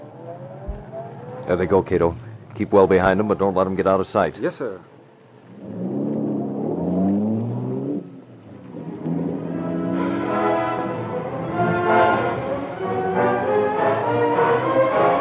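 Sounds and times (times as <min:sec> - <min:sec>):
car engine revving and accelerating away: 0:00.0 - 0:03.9, 0:05.0 - 0:15.1
speech: 0:01.5 - 0:04.9.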